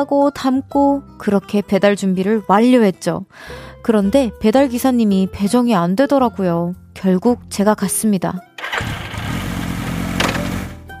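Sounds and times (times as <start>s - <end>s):
speech: 0.0s - 8.5s
delivery motorcycle engine rumbling while ridden on a coffee and dessert delivery: 8.6s - 10.8s.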